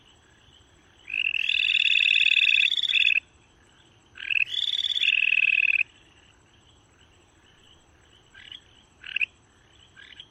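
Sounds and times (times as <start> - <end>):
Japanese tree frog: 0.0 - 10.2.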